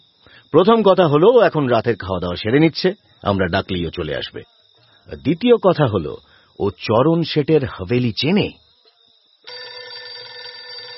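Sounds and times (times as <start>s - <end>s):
speech: 0.5s - 8.6s
landline telephone ringing: 9.5s - 10.9s.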